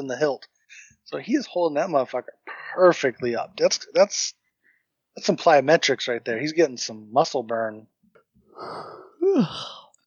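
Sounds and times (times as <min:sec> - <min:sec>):
speech: 0:00.0 - 0:04.4, 0:05.2 - 0:07.9, 0:08.6 - 0:09.8
yawn with voiced groan: 0:08.6 - 0:09.9.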